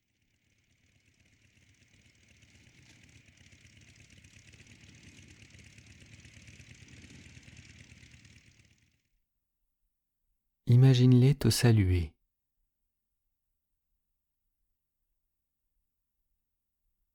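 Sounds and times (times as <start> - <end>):
smoky motorcycle engine idling: 0.0 - 9.2
speech: 10.8 - 12.2.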